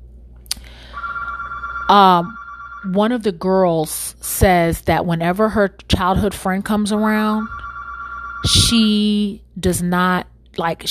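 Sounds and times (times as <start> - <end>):
mobile phone ringing with an electronic ringtone: 0.8 - 3.0, 7.4 - 8.8
speech: 1.9 - 7.6, 8.4 - 10.8.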